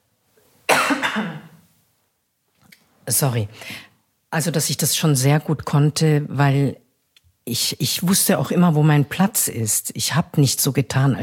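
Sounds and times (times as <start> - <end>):
person coughing: 0.7 - 1.6
speech: 1.2 - 1.4, 3.1 - 6.8, 7.4 - 11.2.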